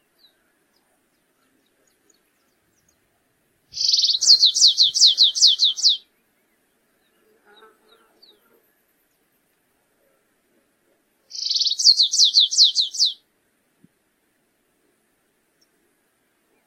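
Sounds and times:
stripe-tailed yellow finch song with buzzing trill and down-slurred notes: 3.8s - 6.0s, 11.3s - 13.2s.

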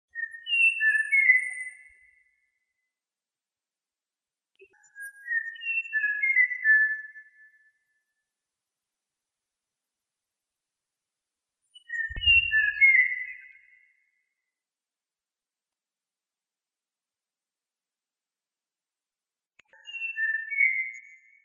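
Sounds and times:
tie do mato grosso singing: 0.1s - 2.8s, 4.6s - 8.1s, 11.8s - 14.4s, 19.7s - 21.4s.

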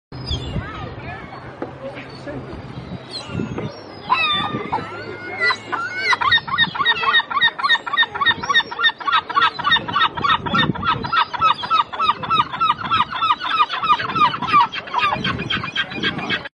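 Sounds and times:
cheerful seagull calling: 3.1s - 16.5s.

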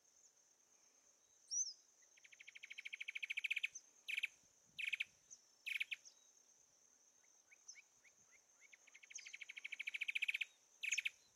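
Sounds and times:
steady high insect whine: 0.0s - 11.3s
Sincora antwren singing fast series of notes: 1.5s - 6.3s, 7.4s - 11.3s.

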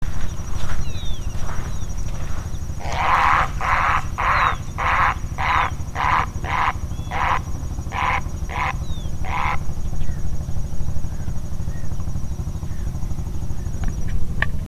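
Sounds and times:
grey heron calling: 0.0s - 14.2s.

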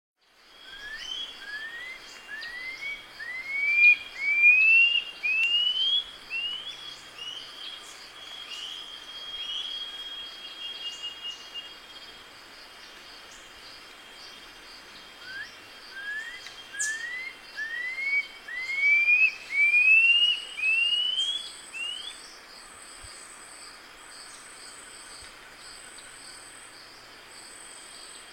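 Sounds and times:
cujubi guan calling: 1.5s - 6.7s, 15.2s - 22.1s.

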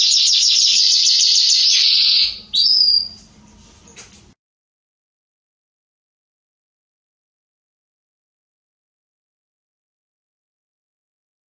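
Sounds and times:
Belgian canary song: 0.0s - 4.3s.

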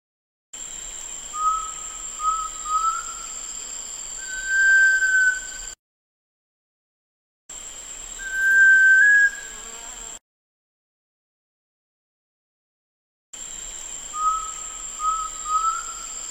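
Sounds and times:
sunbittern whistling: 1.3s - 3.4s, 4.2s - 5.8s, 8.2s - 9.5s, 14.1s - 16.2s.

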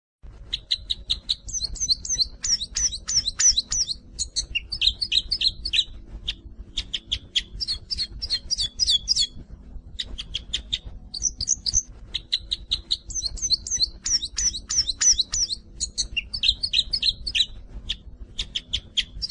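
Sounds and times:
cruza bico bird singing: 0.6s - 9.4s, 10.0s - 19.2s.

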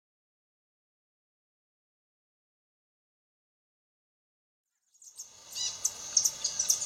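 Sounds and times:
rufous-headed tanager singing thin high sibilant notes: 5.0s - 6.8s.

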